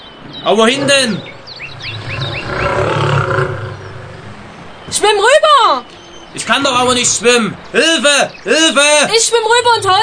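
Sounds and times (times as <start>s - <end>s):
bird chirps: 0.0s - 8.8s
speech: 0.4s - 1.4s, 4.9s - 10.0s
very large lion roaring with a deep rumbling growl: 0.5s - 4.7s.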